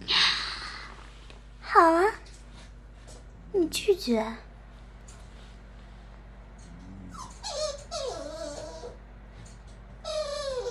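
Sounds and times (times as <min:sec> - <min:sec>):
low hum: 0:00.0 - 0:10.6
speech: 0:03.7 - 0:04.5
dog whimpering: 0:06.7 - 0:09.0, 0:10.0 - 0:10.6.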